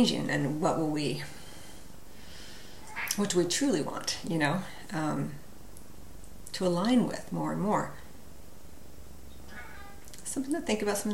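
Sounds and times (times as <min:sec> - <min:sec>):
speech: 0:00.0 - 0:01.4, 0:03.2 - 0:05.4, 0:06.5 - 0:08.0, 0:10.3 - 0:11.1
low hum: 0:00.0 - 0:11.1
cat meowing: 0:02.8 - 0:03.2, 0:09.4 - 0:10.1.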